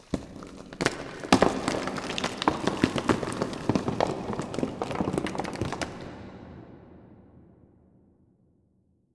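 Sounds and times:
rocks: 0:00.0 - 0:06.2.

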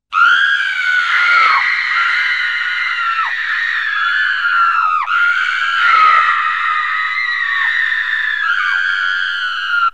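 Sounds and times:
two women screaming in horror: 0:00.1 - 0:09.9.

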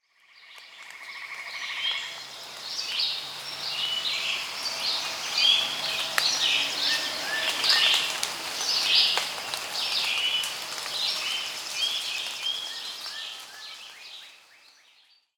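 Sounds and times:
crowd of monkeys calling: 0:02.1 - 0:13.8.

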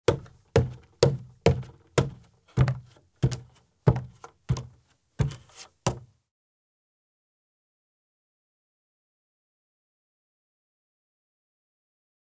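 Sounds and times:
bare feet walking up steps and across a wood porch: 0:00.0 - 0:06.1.

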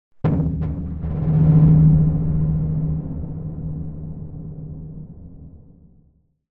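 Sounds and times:
abstract timbale impact, dull drum hits, long: 0:00.2 - 0:05.4.

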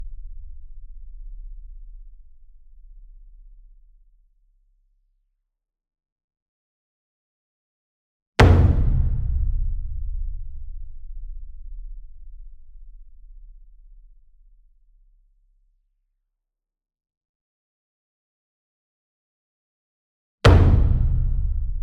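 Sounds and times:
60-inch taiko drum hit with soft beater: 0:08.4 - 0:09.7, 0:20.5 - 0:21.7.

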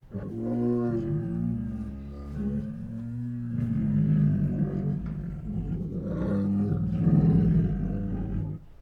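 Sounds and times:
two tigers making deep throaty growls: 0:00.1 - 0:08.8.

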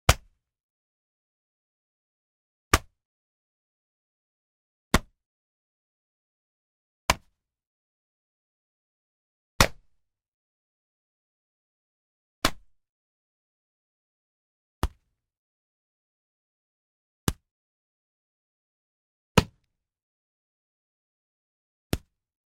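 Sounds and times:
simple martial arts punches: 0:00.1 - 0:00.4, 0:02.7 - 0:02.9, 0:04.9 - 0:05.2, 0:07.1 - 0:07.4, 0:09.6 - 0:09.9, 0:14.8 - 0:15.1, 0:19.4 - 0:19.6, 0:21.9 - 0:22.1.

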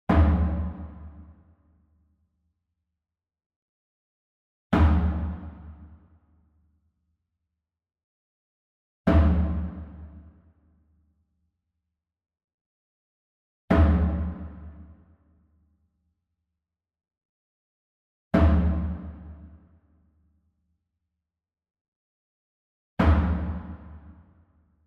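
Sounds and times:
small Fontonfrom drum hit hard with beater: 0:00.1 - 0:01.2, 0:04.7 - 0:05.8, 0:09.1 - 0:10.2, 0:13.7 - 0:14.9, 0:18.4 - 0:19.4, 0:23.0 - 0:24.1.

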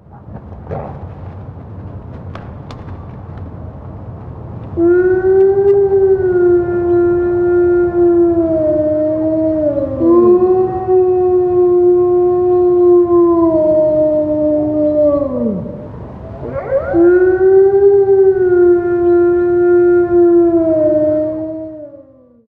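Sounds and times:
lonely wolf: 0:00.0 - 0:03.0, 0:04.7 - 0:22.4.

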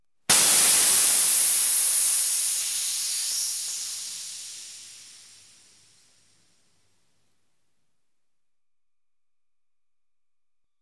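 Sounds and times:
bicycle flat tyre: 0:00.3 - 0:05.9.

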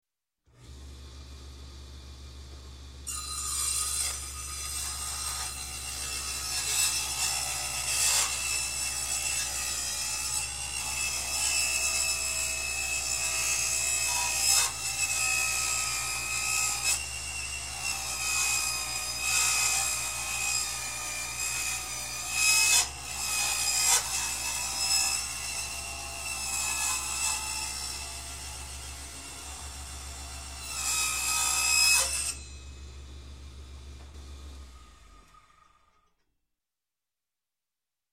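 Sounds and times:
construction table saw starting: 0:00.5 - 0:36.2.

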